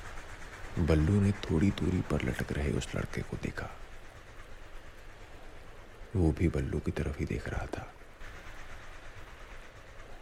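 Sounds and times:
train rumbling across a bridge: 0:00.0 - 0:10.2
speech: 0:00.8 - 0:03.8, 0:06.1 - 0:08.0.

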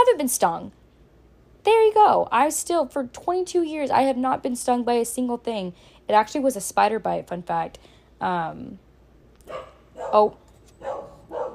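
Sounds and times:
speech: 0:00.0 - 0:00.8, 0:01.6 - 0:08.8, 0:09.5 - 0:11.0
dog barking: 0:09.5 - 0:11.5.

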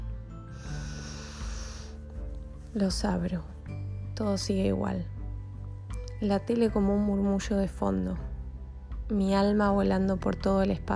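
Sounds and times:
slow deep breath: 0:00.4 - 0:02.4
speech: 0:02.8 - 0:03.5, 0:04.2 - 0:05.1, 0:06.2 - 0:08.3, 0:09.1 - 0:10.9.

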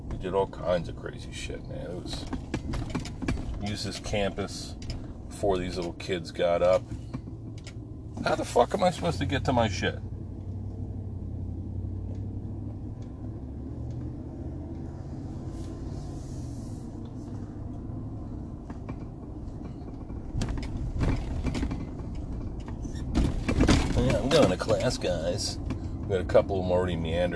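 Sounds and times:
car reversing across a school campus: 0:00.0 - 0:27.3
speech: 0:00.2 - 0:03.0, 0:03.6 - 0:07.0, 0:08.2 - 0:10.0, 0:25.0 - 0:27.3.

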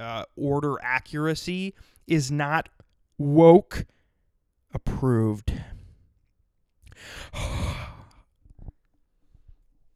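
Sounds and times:
speech: 0:00.4 - 0:04.0, 0:04.7 - 0:05.7, 0:07.0 - 0:07.7
heavy breathing into the microphone: 0:01.8 - 0:02.1, 0:05.5 - 0:06.1, 0:06.9 - 0:09.7.

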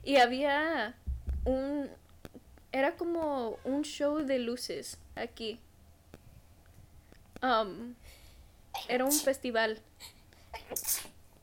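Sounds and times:
speech: 0:00.0 - 0:02.0, 0:02.7 - 0:05.7, 0:07.4 - 0:08.2, 0:08.8 - 0:11.1
person sneezing: 0:10.0 - 0:11.2.

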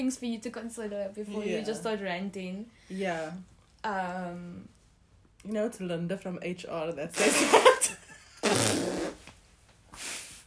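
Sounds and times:
speech: 0:00.0 - 0:04.8, 0:05.4 - 0:08.9
fart noises made with the mouth: 0:08.4 - 0:09.4.

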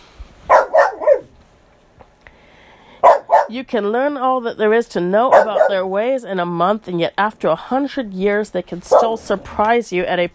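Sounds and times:
dog barking: 0:00.5 - 0:01.3, 0:03.0 - 0:03.6, 0:05.3 - 0:05.9, 0:08.9 - 0:09.2
speech: 0:03.5 - 0:10.3.

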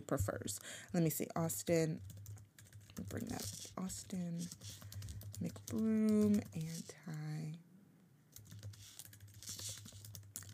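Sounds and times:
speech: 0:00.1 - 0:02.2, 0:03.1 - 0:04.8, 0:05.4 - 0:07.6
fast loud typing on computer keyboard: 0:01.8 - 0:07.2, 0:08.3 - 0:10.5.

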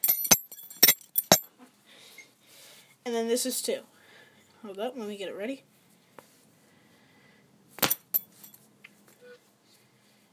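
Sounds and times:
belt buckle clinking as belt is handled: 0:00.0 - 0:01.5, 0:07.8 - 0:08.6
speech: 0:03.1 - 0:04.0, 0:04.6 - 0:05.7.

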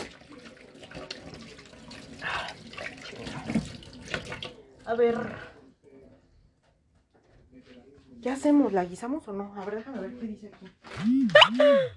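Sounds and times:
water tap running while hands are washed: 0:00.0 - 0:04.6
speech: 0:04.9 - 0:05.5, 0:08.3 - 0:11.9.

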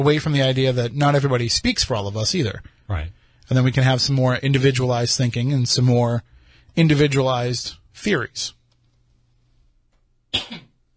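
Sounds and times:
speech: 0:00.0 - 0:08.6, 0:10.3 - 0:10.7
person with allergies coughing: 0:10.3 - 0:10.8.

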